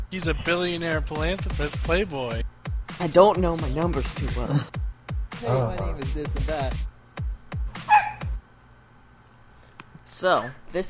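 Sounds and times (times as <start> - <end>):
speech: 0.1 - 4.8, 5.4 - 6.9, 10.2 - 10.8
dog barking: 7.8 - 8.3.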